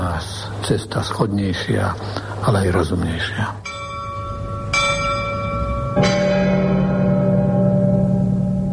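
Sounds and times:
speech: 0.7 - 3.7
church bell ringing: 3.6 - 8.7.

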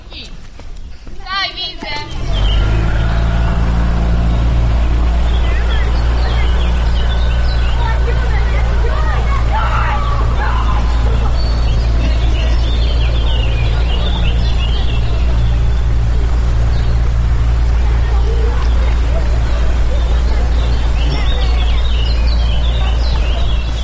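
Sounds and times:
young children's voices at a boathouse: 1.1 - 23.8
steady low rumble: 1.4 - 23.8
laughter: 3.0 - 23.8.

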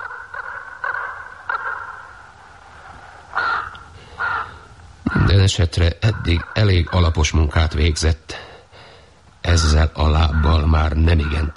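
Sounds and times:
crow cawing in short harsh bursts: 0.0 - 2.4, 3.3 - 5.3, 6.1 - 7.2, 8.8 - 11.5
speech: 5.5 - 8.4, 9.6 - 11.5.

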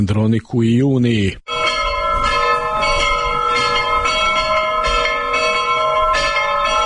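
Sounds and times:
speech: 0.0 - 1.4
Orthodox church bells ringing: 1.5 - 6.8.

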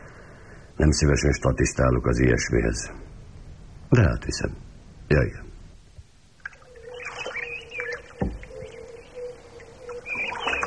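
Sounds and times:
speech: 0.8 - 3.1, 3.9 - 5.4
birds chirping and trilling in a reedy lakeside marsh: 6.4 - 10.6
soft thud: 8.2 - 8.5.

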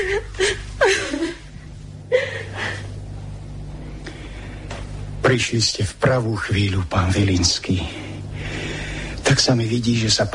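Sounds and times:
woman whimpering and crying: 0.0 - 3.0
speech: 5.3 - 8.1, 9.3 - 10.3.

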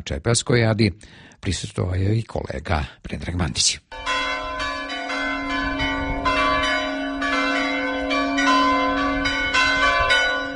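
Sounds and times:
speech: 0.0 - 4.2
Serbian Orthodox church bells ringing in Lovra to call worshippers: 3.9 - 10.5.

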